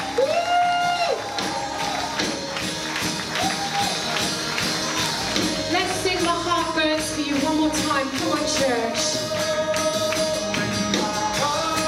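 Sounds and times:
voices whooping: 0.0 - 5.6
church audience cheering and applauding: 0.0 - 11.8.

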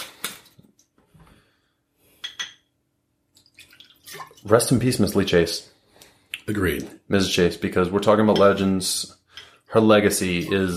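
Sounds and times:
shot of liquor being poured: 3.4 - 4.9
speech: 4.1 - 5.7, 6.5 - 10.7.

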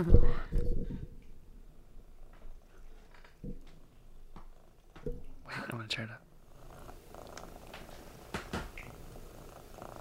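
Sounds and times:
speech: 0.0 - 0.5, 5.8 - 6.2
cat purring: 2.0 - 5.4, 6.4 - 9.9.

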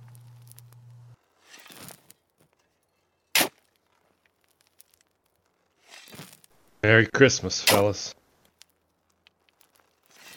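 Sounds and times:
low hum: 0.0 - 1.2
loose earth being dumped into a hole: 1.3 - 2.1, 3.4 - 6.6, 9.6 - 10.3
shovel filling a hole with soil: 1.3 - 2.1, 3.3 - 3.7, 5.8 - 6.5, 7.6 - 8.1, 10.0 - 10.3
speech: 6.8 - 8.2.

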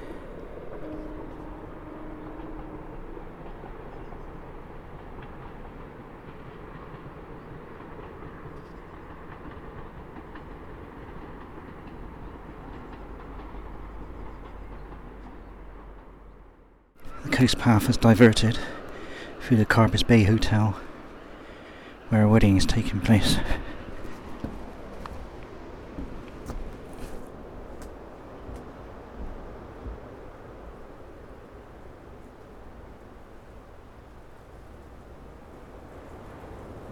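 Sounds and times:
train heading into St Ives on the railway line above Porth Kidney Sands: 0.0 - 36.8
speech: 17.3 - 18.8, 19.5 - 20.8, 22.1 - 23.7.

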